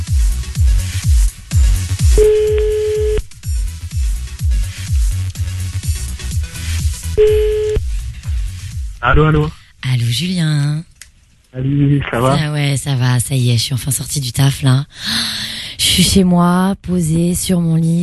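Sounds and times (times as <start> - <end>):
steady thumping rhythmic music bed: 0.0 - 9.5
outgoing-call ringback tone on a telephone: 2.2 - 3.2, 7.2 - 7.8
speech: 9.1 - 10.9, 11.5 - 15.4, 16.0 - 18.0.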